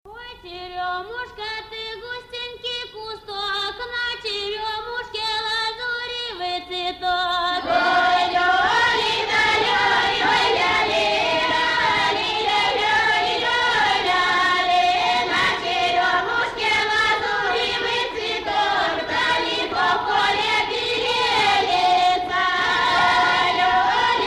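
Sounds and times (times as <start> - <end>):
Belarusian folk song: 0.4 - 24.2.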